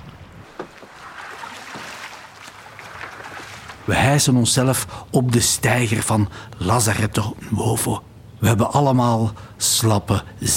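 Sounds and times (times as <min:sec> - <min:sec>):
water sloshing and splashing around a small rowing boat on choppy open water: 0:00.0 - 0:04.4
waves: 0:00.0 - 0:05.7
wind: 0:00.0 - 0:10.5
speech: 0:03.9 - 0:10.5.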